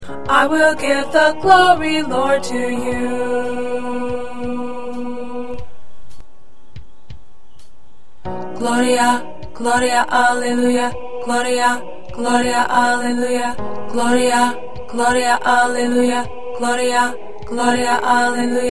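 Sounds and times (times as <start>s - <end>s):
alto voice singing: 0.0s - 6.0s, 8.4s - 18.7s.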